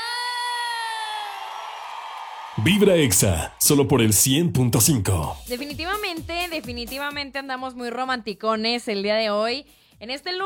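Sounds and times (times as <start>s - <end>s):
crowd cheering and shrieking: 0.0s - 3.4s
applause: 0.9s - 5.4s
speech: 2.6s - 10.4s.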